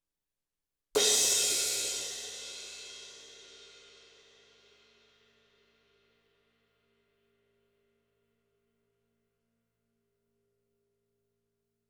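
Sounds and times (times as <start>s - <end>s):
cymbal crash: 1.0s - 4.0s.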